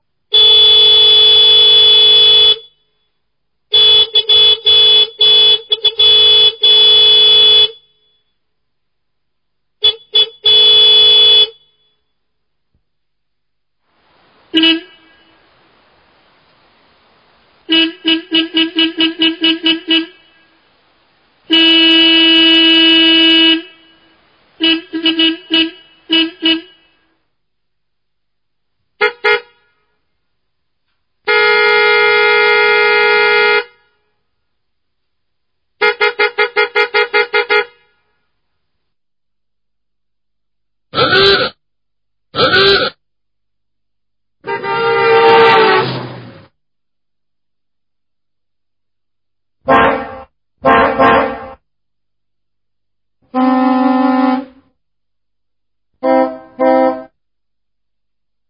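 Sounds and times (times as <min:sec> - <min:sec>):
annoying car horn: 0:00.3 - 0:03.1, 0:03.7 - 0:08.3, 0:09.8 - 0:12.1, 0:14.5 - 0:15.5, 0:17.6 - 0:20.6, 0:21.5 - 0:27.1, 0:29.0 - 0:30.0, 0:31.3 - 0:34.2, 0:35.8 - 0:38.2, 0:42.4 - 0:43.0, 0:44.4 - 0:46.4, 0:49.6 - 0:51.6, 0:53.3 - 0:54.7, 0:56.0 - 0:57.2.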